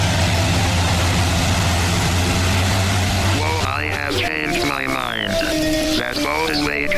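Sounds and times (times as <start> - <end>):
hovercraft engine roaring: 0.0 - 6.9
voices: 3.3 - 6.9.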